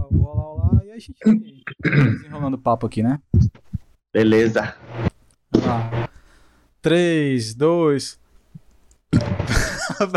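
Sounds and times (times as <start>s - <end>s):
speech: 0.1s - 3.3s, 4.2s - 6.0s, 6.8s - 8.2s, 9.1s - 10.1s
loud raspy throaty burp: 1.8s - 2.3s
laughter: 9.3s - 10.1s.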